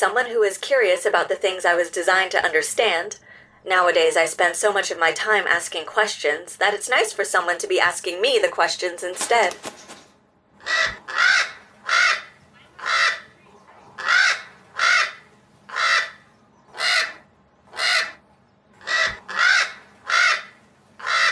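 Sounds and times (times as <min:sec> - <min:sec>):
speech: 0:00.0 - 0:10.0, 0:10.6 - 0:11.4
crow cawing: 0:10.6 - 0:13.4, 0:14.0 - 0:18.2, 0:18.8 - 0:21.3.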